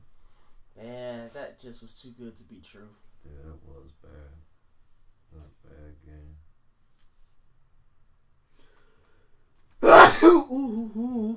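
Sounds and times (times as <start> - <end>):
speech: 1.6 - 4.5, 5.3 - 6.4, 10.2 - 11.3
person sneezing: 9.8 - 11.3.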